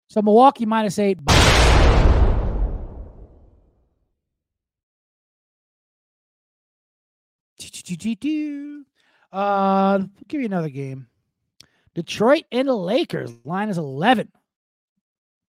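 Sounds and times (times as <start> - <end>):
speech: 0.1 - 2.1, 7.9 - 11.1, 12.0 - 14.4
bomb explosion sound effect: 1.3 - 3.5.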